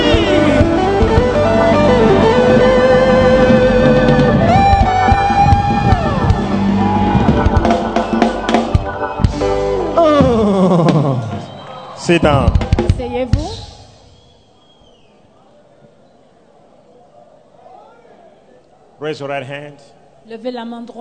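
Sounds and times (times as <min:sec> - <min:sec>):
sustained instrumental tones: 0:00.0 - 0:14.2
audience shouting and cheering in praise: 0:00.0 - 0:14.6
speech: 0:12.1 - 0:12.6, 0:19.1 - 0:20.9.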